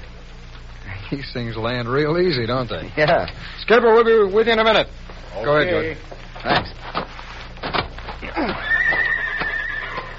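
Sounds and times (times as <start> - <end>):
speech: 1.1 - 6.7
horse neighing and whinnying loudly: 8.2 - 10.1.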